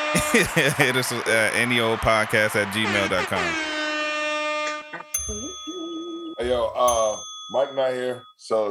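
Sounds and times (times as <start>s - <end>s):
laughter: 0.2s - 3.8s
speech: 0.3s - 3.7s, 5.3s - 5.6s, 6.4s - 8.6s
bright sustained notification bell ding: 5.2s - 8.6s.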